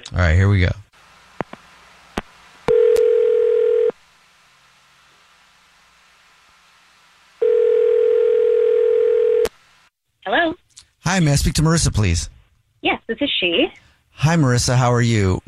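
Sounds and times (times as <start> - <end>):
speech: 0.1 - 0.8, 11.2 - 15.4
phone dialing clicks: 2.7 - 3.9
phone ringing tone: 2.7 - 4.0, 7.4 - 9.5.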